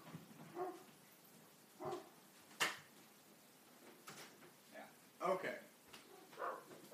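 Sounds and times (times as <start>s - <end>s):
female dog barking indoors behind a shut door: 0.5s - 0.9s, 1.8s - 2.2s, 6.0s - 6.9s.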